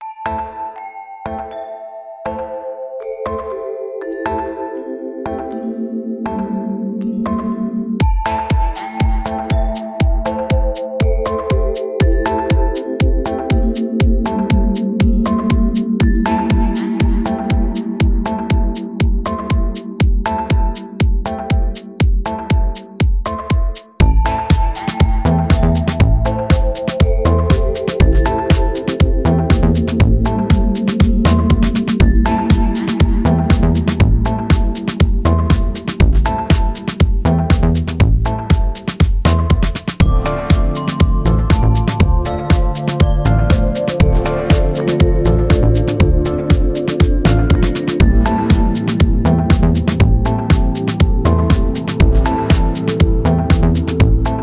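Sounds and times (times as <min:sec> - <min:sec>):
chill house music: 0:00.0 - 0:54.4.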